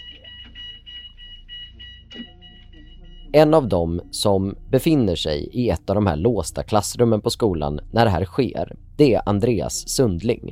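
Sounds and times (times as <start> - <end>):
school fire alarm ringing: 0.0 - 3.4
low rumble: 2.9 - 10.5
speech: 3.3 - 10.5.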